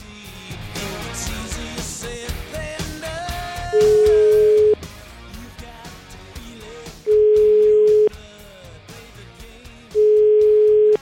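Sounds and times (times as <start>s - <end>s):
busy music: 0.0s - 10.9s
telephone dial tone while placing a call: 3.8s - 4.8s, 7.1s - 8.1s, 10.0s - 10.9s.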